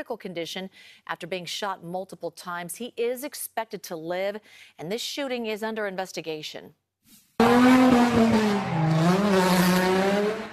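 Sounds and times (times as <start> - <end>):
speech: 0.0 - 10.0
car engine roaring at a sideshow in downtown Oakland: 7.4 - 10.5
car tires squealing while spinning out at a sideshow: 7.4 - 10.5.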